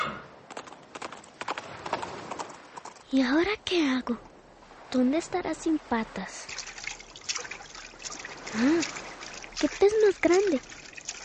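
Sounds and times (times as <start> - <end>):
horse hooves clip-clopping as it walks away from the seashore: 0.4 - 3.2, 6.5 - 11.2
speech: 3.1 - 4.3, 4.9 - 6.6, 8.5 - 9.0, 9.6 - 10.8.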